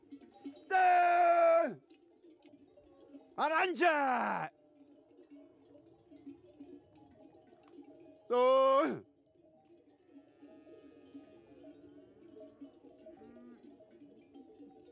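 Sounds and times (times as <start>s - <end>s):
sheep in a moving flock on transhumance bleating: 0.7s - 1.8s
speech: 3.4s - 4.5s, 8.3s - 9.1s.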